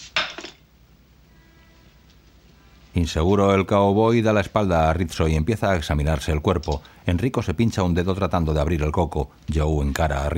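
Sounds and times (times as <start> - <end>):
plate thrown down onto a table: 0.1 - 0.6
speech: 3.0 - 10.3.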